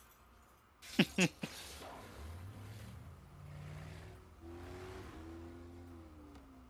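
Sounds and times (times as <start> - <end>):
laughter: 0.9 - 1.6
speech: 1.0 - 1.7
stolen speedboat engine revving: 2.0 - 6.6.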